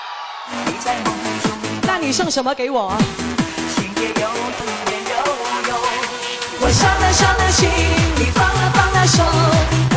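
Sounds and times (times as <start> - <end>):
crowd screaming and cheering: 0.0 - 1.3, 6.5 - 8.6
speech: 0.4 - 3.4, 4.0 - 5.3, 6.7 - 9.8.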